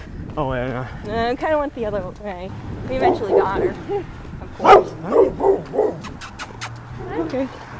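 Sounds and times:
speech: 0.4 - 6.2, 7.0 - 7.6
dog barking: 3.0 - 3.7, 4.6 - 6.0.

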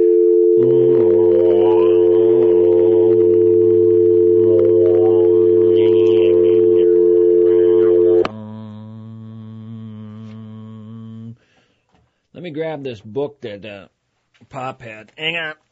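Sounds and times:
telephone dial tone: 0.0 - 8.3
speech: 12.6 - 15.6.

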